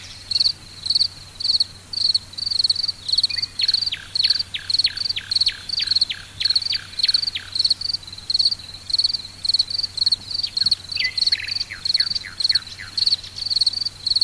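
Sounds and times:
crickets chirping in early evening: 0.0s - 14.2s.

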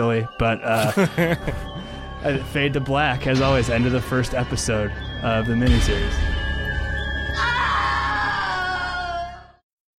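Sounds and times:
speech: 0.0s - 6.4s
laughter: 0.7s - 1.7s
woman imitating a dramatic scream: 7.4s - 9.6s.

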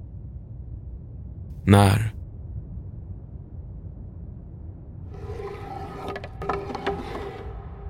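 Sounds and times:
low steady rumble: 0.0s - 5.2s
speech: 1.6s - 2.2s
wooden planchette sliding across a ouija board: 5.2s - 7.7s.

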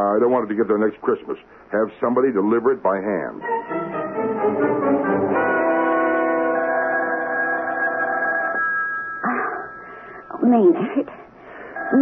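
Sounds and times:
speech: 0.0s - 3.8s, 10.5s - 11.2s
telephone ringing: 5.1s - 11.9s.

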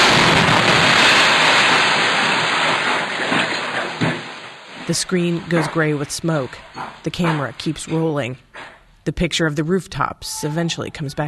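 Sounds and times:
rocket explosion hitting a house: 0.0s - 4.9s
rumbling debris: 0.0s - 9.0s
speech: 4.9s - 11.2s.

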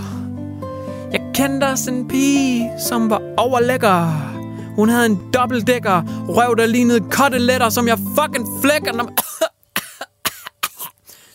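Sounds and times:
speech: 1.4s - 9.2s
harsh wet cough: 9.2s - 11.0s.

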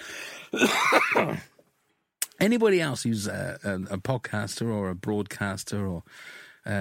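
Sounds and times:
speech: 0.5s - 1.5s, 2.4s - 6.7s
loud rasping throat clearing and cough into a corner: 0.5s - 1.6s.

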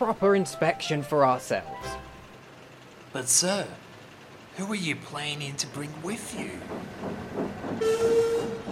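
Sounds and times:
speech: 0.0s - 2.0s, 3.1s - 3.9s, 4.6s - 8.6s
steam engine chugging along rails into a steamworks: 0.0s - 8.6s
steam engine bright sustained whistle: 7.8s - 8.6s.

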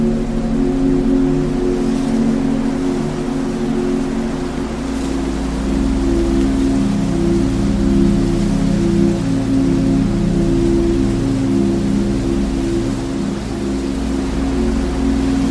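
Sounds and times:
soft sustained 432 Hz relaxing music: 0.0s - 15.4s
steady wind blowing in fields: 0.0s - 15.4s.

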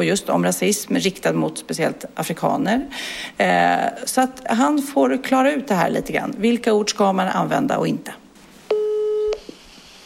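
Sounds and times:
speech: 0.0s - 8.2s
electronic beep of telephone ringing tone on an outgoing call: 8.7s - 9.5s.

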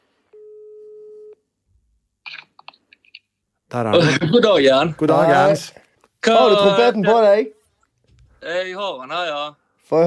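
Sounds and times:
telephone ringback tone: 0.4s - 1.4s
speech: 3.7s - 7.6s, 8.4s - 10.0s.

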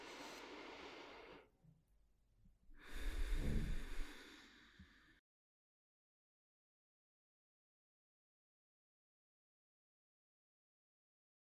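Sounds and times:
slow deep breathing during a guided meditation: 0.0s - 1.5s, 2.8s - 5.2s.

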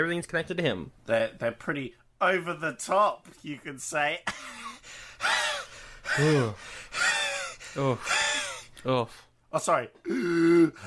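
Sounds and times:
speech: 0.0s - 5.5s, 6.1s - 10.8s
person imitating a film character's exaggerated gasping inhaled laugh: 4.3s - 8.7s.

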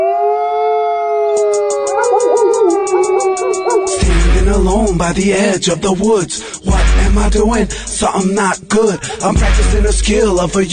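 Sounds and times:
wolves howling: 0.0s - 4.0s
speech: 4.6s - 10.7s.

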